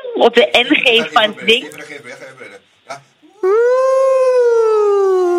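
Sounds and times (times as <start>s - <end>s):
speech: 0.2s - 3.1s
voice imitating a siren in a sliding vocal exercise over two octaves: 3.4s - 5.3s.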